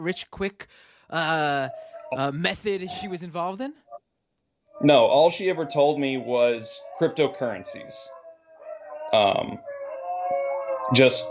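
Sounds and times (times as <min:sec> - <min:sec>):
harsh vocal bursts: 0:00.0 - 0:03.8
speech: 0:00.0 - 0:03.8, 0:04.8 - 0:08.2, 0:09.1 - 0:09.7, 0:10.9 - 0:11.3
dogs howling with long wavering wails: 0:01.7 - 0:03.1, 0:04.8 - 0:11.3.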